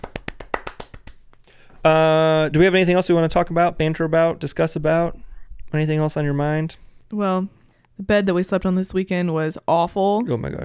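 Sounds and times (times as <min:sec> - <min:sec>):
hand clapping as a round of applause: 0:00.0 - 0:01.5
speech: 0:01.8 - 0:10.6.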